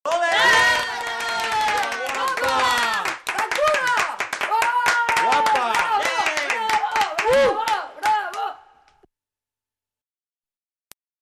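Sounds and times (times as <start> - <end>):
children applauding: 0.1 - 8.6.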